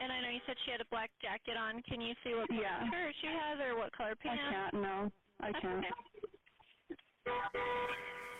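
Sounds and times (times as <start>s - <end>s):
speech: 0.4s - 6.1s, 7.3s - 8.3s
car horn honking: 7.3s - 8.3s.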